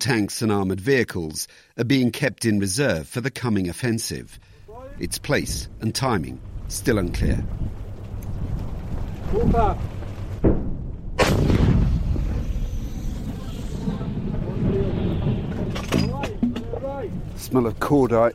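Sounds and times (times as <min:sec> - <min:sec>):
speech: 0:00.0 - 0:07.8, 0:09.3 - 0:11.6, 0:17.4 - 0:18.3
wind buffeting the microphone: 0:04.4 - 0:18.3
British light artillery gun firing toward a city from its outskirts: 0:10.3 - 0:17.3.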